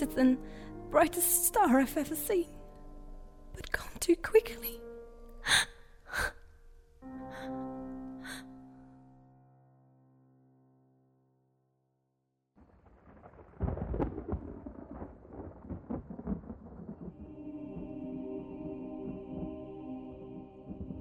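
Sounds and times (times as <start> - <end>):
speech: 0.0 - 2.6, 3.6 - 6.4
thunder rumbling in a low rolling swell: 12.6 - 20.9.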